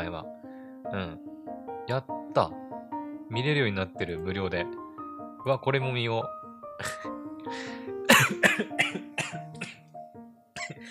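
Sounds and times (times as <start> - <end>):
speech: 0.0 - 2.6, 3.3 - 4.8, 5.4 - 8.7
choking coughs: 6.8 - 7.2, 8.1 - 9.9, 10.6 - 10.8.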